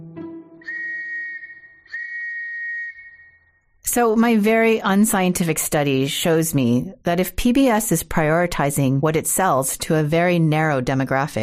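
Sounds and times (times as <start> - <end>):
London police whistle blasts with fluttering trill: 0.6 - 3.5
speech: 3.9 - 11.4.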